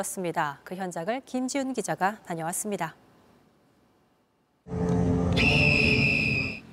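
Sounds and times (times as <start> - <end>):
speech: 0.0 - 3.0
referee whistle blast: 5.3 - 6.7.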